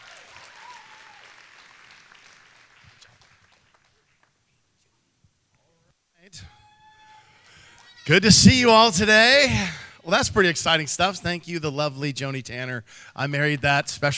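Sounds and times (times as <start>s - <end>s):
audience applauding: 0.0s - 4.4s
speech: 6.3s - 6.6s, 8.1s - 14.1s.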